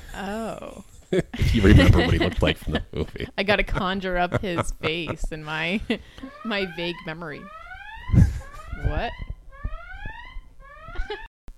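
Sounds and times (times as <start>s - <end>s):
speech: 0.2s - 8.2s, 8.8s - 9.3s, 11.1s - 11.3s
laughter: 1.2s - 6.0s, 8.2s - 8.7s
phone ringing with bright electronic alarm-like ringtone: 6.2s - 11.3s.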